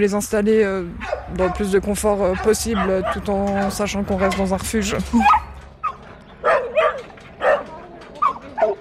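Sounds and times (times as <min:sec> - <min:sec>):
speech: 0:00.0 - 0:05.4
young Staffordshire terrier barking at a dog shelter: 0:01.0 - 0:04.4, 0:05.2 - 0:08.7.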